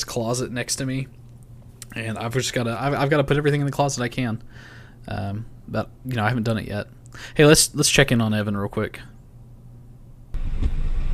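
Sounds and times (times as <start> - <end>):
speech: 0.1 - 1.2, 2.0 - 9.1
quiet low rumble: 10.3 - 11.1.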